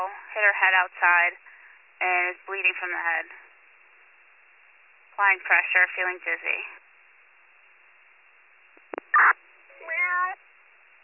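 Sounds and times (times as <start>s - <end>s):
speech: 0.0s - 3.4s, 5.2s - 6.8s
cat meowing over a thin radio-like channel: 9.2s - 10.4s.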